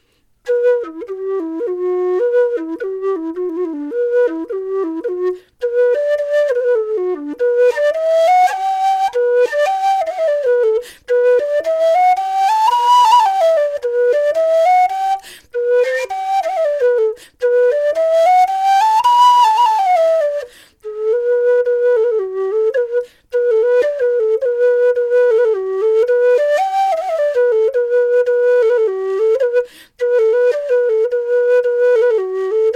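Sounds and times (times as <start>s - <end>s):
simple low whistle melody: 0.4s - 32.7s.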